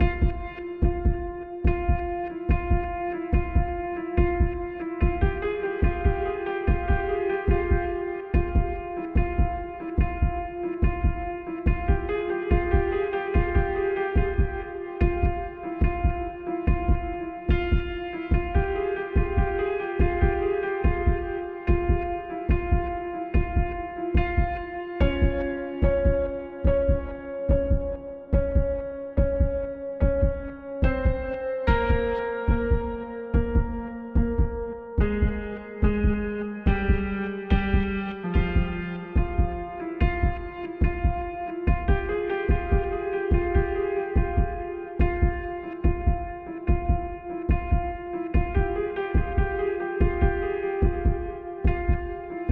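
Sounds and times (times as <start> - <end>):
combat piano heart drum stem: 0.0 - 52.5.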